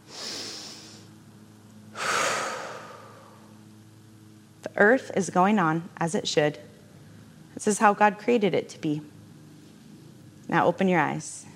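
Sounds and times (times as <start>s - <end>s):
deep breath of fresh air drawn in: 2.0s - 3.5s
speech: 4.7s - 6.7s, 7.6s - 9.1s, 10.5s - 11.5s.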